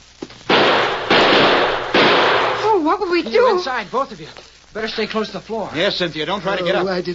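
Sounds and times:
gunshots from a Winchester rifle and a six-shooter revolver: 0.5s - 2.8s
speech: 3.0s - 7.1s.

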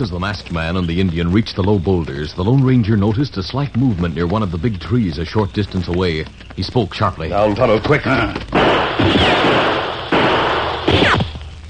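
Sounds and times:
speech: 0.0s - 9.4s
gunshots in a radio-drama western shootout among boulders and trees: 8.5s - 11.4s.

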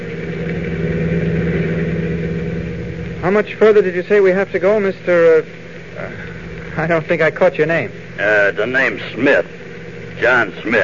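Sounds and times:
car engine droning while driving: 0.0s - 3.6s
speech: 3.3s - 6.2s, 6.8s - 9.6s, 10.2s - 10.8s.

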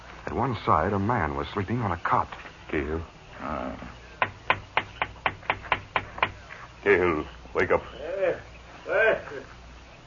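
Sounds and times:
speech: 0.4s - 4.0s, 6.8s - 8.5s
knocking on the window of a livery stable office at night: 4.2s - 6.4s.

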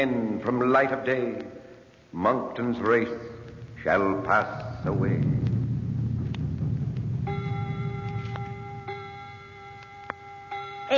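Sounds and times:
speech: 0.0s - 5.3s
low rumble: 2.9s - 10.7s
clock striking nine o'clock chimes: 7.3s - 10.9s.

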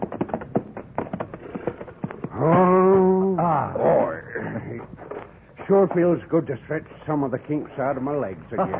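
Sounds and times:
horses shuffling and clopping hooves at a hitching rail: 0.0s - 6.4s
horse whinnying loud and drawn-out: 1.3s - 4.9s
speech: 5.7s - 8.7s.

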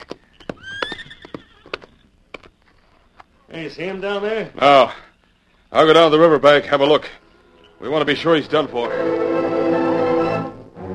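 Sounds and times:
horse hoofbeats clopping: 0.0s - 2.9s
horse whinnying: 0.4s - 2.0s
speech: 3.5s - 5.1s, 5.7s - 7.2s, 7.8s - 9.3s.

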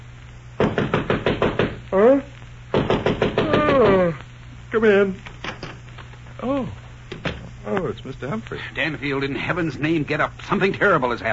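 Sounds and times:
firm knocks on a wooden bedroom door: 0.6s - 1.8s, 2.7s - 3.8s
person calling out: 1.9s - 2.4s, 3.4s - 4.2s, 6.4s - 6.8s
speech: 4.8s - 5.3s, 6.4s - 6.8s, 7.6s - 11.3s.

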